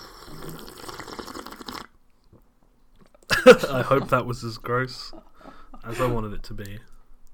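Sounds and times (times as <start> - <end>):
person slurping hot coffee: 0.0 - 2.0
laughter: 3.3 - 6.4
speech: 3.4 - 5.2, 5.8 - 6.9.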